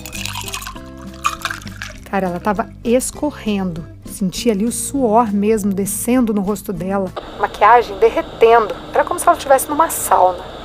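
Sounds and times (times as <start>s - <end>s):
water poured over ice into a glass: 0.0s - 2.1s
speech: 2.1s - 10.6s.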